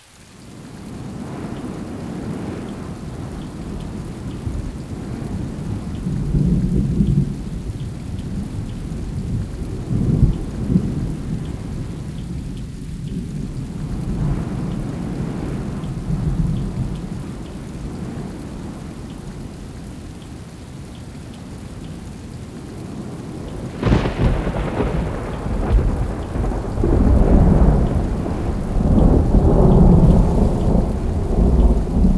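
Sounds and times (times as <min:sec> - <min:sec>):
rain: 0:00.0 - 0:32.1
wind: 0:00.0 - 0:32.1.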